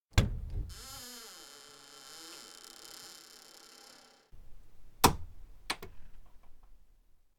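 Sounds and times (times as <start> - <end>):
nap room door closing quietly: 0.1 - 4.1.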